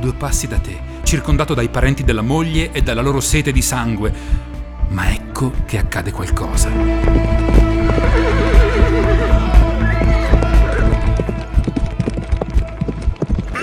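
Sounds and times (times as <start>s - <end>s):
speech: 0.0s - 8.6s
warhorse hooves clopping: 6.6s - 13.6s
grey warhorse whinnying: 7.6s - 11.4s.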